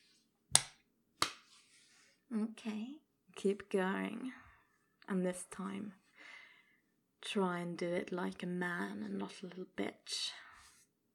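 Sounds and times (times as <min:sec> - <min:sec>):
hand slapping skin: 0:00.5 - 0:01.6
speech: 0:02.3 - 0:04.4, 0:05.1 - 0:06.0, 0:07.2 - 0:10.4.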